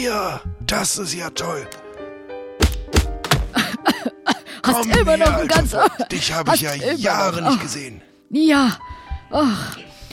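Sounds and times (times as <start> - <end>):
speech: 0.0 - 1.8, 4.7 - 9.9
hearty slaps on someone's back: 2.6 - 3.6
laughter: 3.6 - 7.8.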